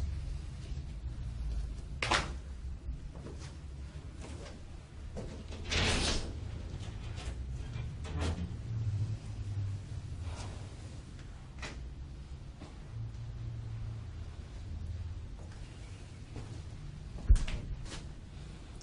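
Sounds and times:
steady low rumble: 0.0s - 5.1s, 6.4s - 18.8s
door sliding open with scraping and rattling: 5.2s - 11.0s.

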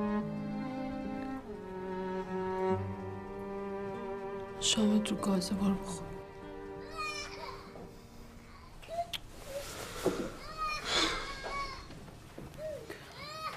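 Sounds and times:
faint noise: 0.0s - 13.5s
speech: 4.6s - 6.1s
young child crying in short wavering wails: 6.7s - 9.2s, 10.4s - 12.0s, 12.6s - 13.5s.

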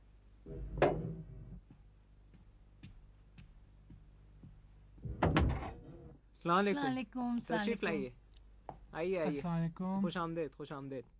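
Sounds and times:
door rattling clunk: 5.0s - 5.9s
speech: 6.4s - 8.2s, 8.9s - 11.1s.

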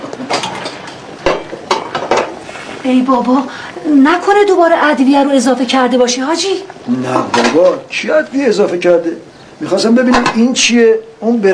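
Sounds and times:
cooking pot being handled in a home kitchen: 0.0s - 2.4s, 7.3s - 7.8s, 10.0s - 10.6s
low hiss: 0.0s - 11.5s
speech: 2.8s - 11.5s.

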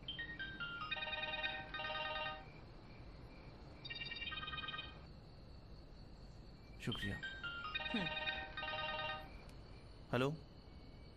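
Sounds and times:
phone electronic melodic ringtone: 0.1s - 2.5s, 3.9s - 5.0s, 7.0s - 9.4s
speech: 6.8s - 8.3s, 10.1s - 10.5s.

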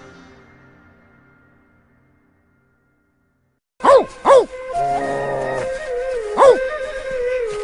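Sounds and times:
dog whimpering: 3.8s - 6.8s
dog howling: 3.8s - 7.5s.

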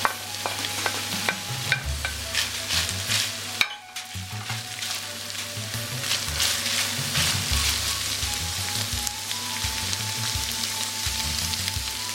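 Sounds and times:
bell pepper and meat sizzling in a pan for a pizza topping: 0.0s - 12.1s.

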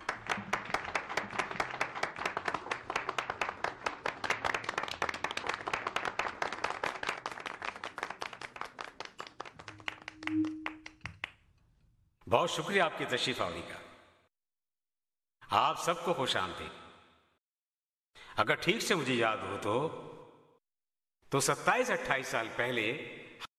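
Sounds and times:
audience applause: 0.0s - 11.2s
speech: 12.3s - 13.8s, 15.5s - 16.8s, 18.4s - 20.0s, 21.3s - 23.1s.

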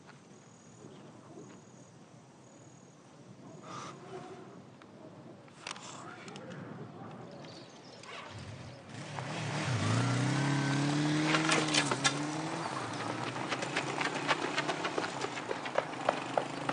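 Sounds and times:
motorcycle engine revving: 8.2s - 16.7s.

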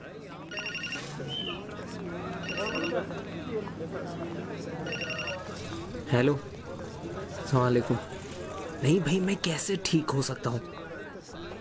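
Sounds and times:
telephone ringing: 0.4s - 1.2s, 2.3s - 3.1s, 4.8s - 5.9s
speech: 3.0s - 6.6s, 7.5s - 8.2s, 8.8s - 10.8s.

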